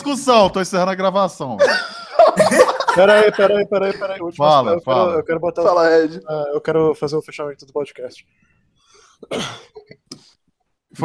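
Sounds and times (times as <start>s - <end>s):
speech: 0.0s - 8.5s, 9.2s - 10.0s
laughter: 1.6s - 4.3s
person coughing: 9.2s - 10.0s.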